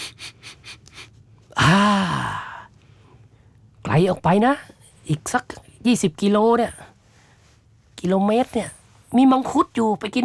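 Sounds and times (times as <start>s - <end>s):
sniffing the air for food: 0.0s - 1.2s
loud voiced exhale: 0.0s - 2.7s
speech: 4.0s - 6.9s, 8.0s - 10.2s.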